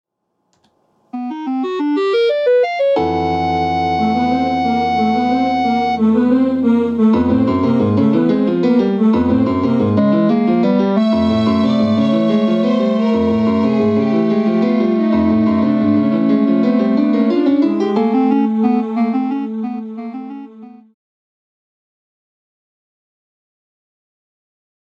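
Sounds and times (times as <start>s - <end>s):
opening music: 1.1s - 20.9s.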